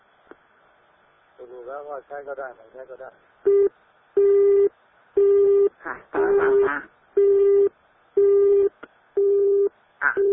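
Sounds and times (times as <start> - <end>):
speech: 1.6 - 3.8, 5.8 - 7.4
phone line busy tone beeps after a dropped call: 3.5 - 5.7, 6.4 - 10.3.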